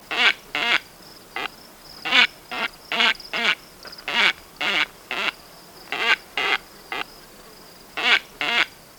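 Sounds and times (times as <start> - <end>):
white-faced ibis giving nasal grunting calls: 0.1 - 7.2.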